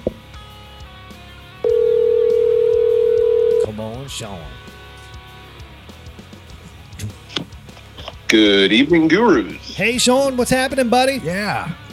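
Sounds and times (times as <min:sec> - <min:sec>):
electronic telephone ringback tone of an outgoing call: 0:01.6 - 0:03.7
speech: 0:04.1 - 0:04.6, 0:08.3 - 0:11.8.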